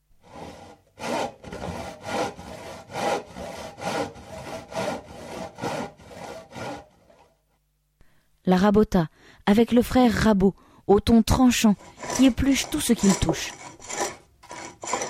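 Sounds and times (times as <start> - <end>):
squeaking hand saw cutting a wooden plank in a workshop: 0.2 - 7.3, 11.6 - 15.0
speech: 8.5 - 13.6.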